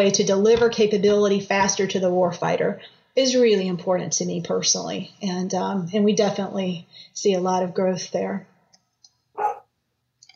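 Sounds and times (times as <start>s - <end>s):
speech: 0.0s - 8.5s
dog barking: 9.4s - 9.7s.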